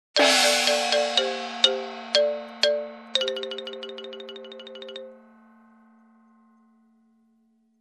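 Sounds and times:
cymbal crash: 0.2s - 3.0s
Japanese glockenspiel: 0.2s - 7.7s.

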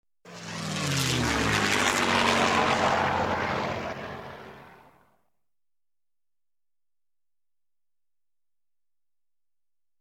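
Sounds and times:
warplane whirring: 0.3s - 5.2s.

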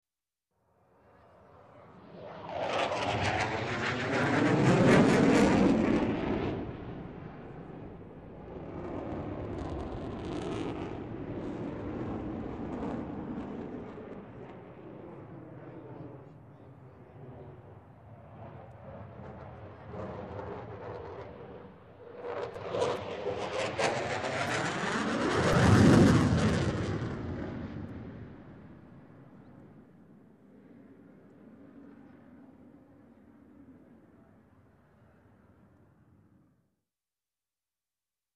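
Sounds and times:
two high speed jets passing by: 1.6s - 29.9s.

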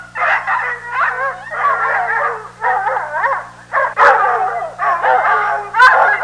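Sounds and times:
Bloodhound pack barking: 0.0s - 6.2s.

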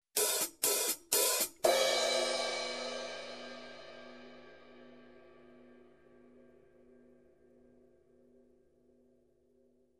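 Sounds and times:
open hi-hats: 0.0s - 3.6s
crash cymbal: 0.2s - 5.8s.

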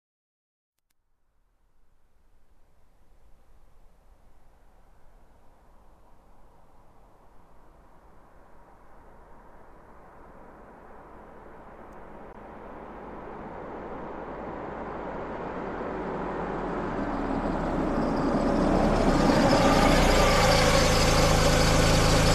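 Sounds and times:
car engine shutting off after parking: 11.6s - 22.3s.

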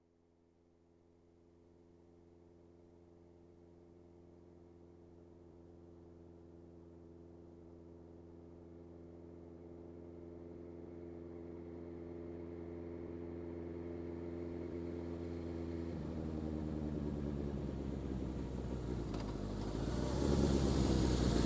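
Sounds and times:
motorcycle approaching: 10.6s - 21.4s.

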